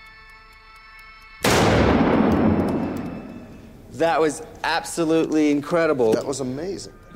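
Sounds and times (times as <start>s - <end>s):
two rapid gunshots merging into one blast: 1.4s - 3.5s
long rumbling gunshot echo: 1.4s - 4.0s
speech: 4.0s - 7.1s.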